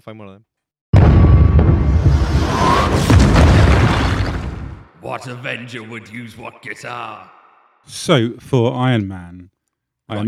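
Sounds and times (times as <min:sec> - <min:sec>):
speech: 0:00.0 - 0:00.5, 0:05.0 - 0:10.2
spacey explosion sound effect: 0:01.0 - 0:04.9.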